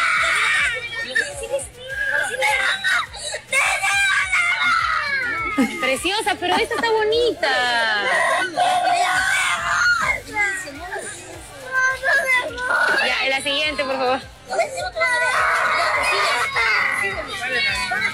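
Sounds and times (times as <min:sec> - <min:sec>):
crowd of children and adults shouting and screaming in Peru: 0:00.0 - 0:06.0, 0:07.6 - 0:18.1
speech: 0:06.4 - 0:08.8.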